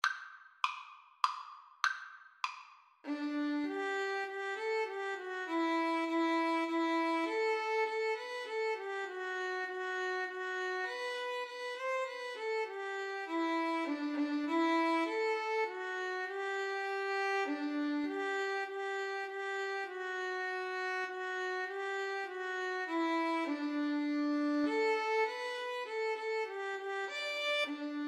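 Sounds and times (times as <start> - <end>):
violin and viola duet: 3.1 - 28.0.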